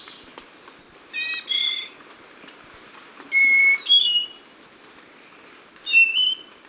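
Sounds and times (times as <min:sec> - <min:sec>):
spotted nightingale-thrush singing whistled notes in Ecuador: 0:01.0 - 0:02.0, 0:03.2 - 0:05.0, 0:05.8 - 0:06.6.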